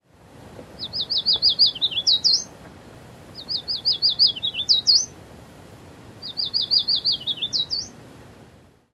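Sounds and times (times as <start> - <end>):
yellow warbler singing sweet high repeated notes with accented flourish: 0.8 - 2.5, 3.4 - 5.2, 6.2 - 8.0.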